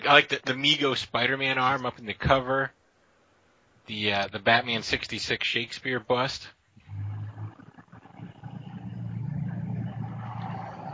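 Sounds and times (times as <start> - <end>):
speech: 0.0 - 2.8, 3.9 - 6.6
truck engine drone: 6.8 - 10.9.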